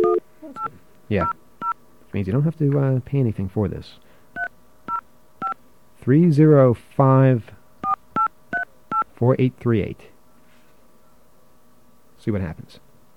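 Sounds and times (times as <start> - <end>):
touch-tone beeps dialing an 800 number on a phone line: 0.0 - 0.7, 4.4 - 5.6
speech: 1.1 - 1.4, 2.1 - 4.0, 6.0 - 7.6, 9.2 - 10.1, 12.2 - 12.8.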